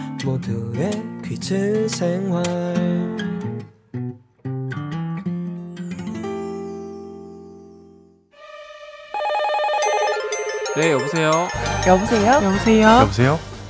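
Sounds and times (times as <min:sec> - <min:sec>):
speech: 0:00.2 - 0:03.3, 0:10.8 - 0:13.5
short musical jingle with punchy stabs and a sustained chord: 0:08.4 - 0:13.4
bright electronic telephone ringing tones for a radio phone-in quiz: 0:09.1 - 0:12.8.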